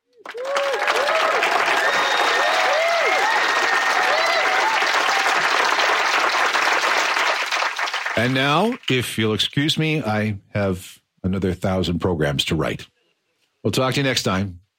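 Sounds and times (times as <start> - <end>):
audience applause: 0.0 - 9.0
audience cheering: 0.0 - 9.0
audience whistles: 1.7 - 2.7
speech: 8.2 - 12.9, 13.6 - 14.6.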